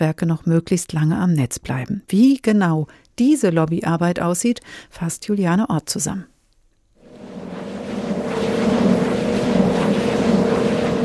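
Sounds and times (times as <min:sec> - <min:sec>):
speech: 0:00.0 - 0:06.3
wind turbine rotors turning: 0:07.0 - 0:11.0.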